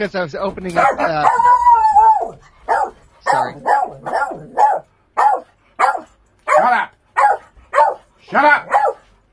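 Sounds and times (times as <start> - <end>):
speech: 0.0 - 1.4
dog yelping barks: 0.7 - 9.1
dog howling: 0.8 - 5.4.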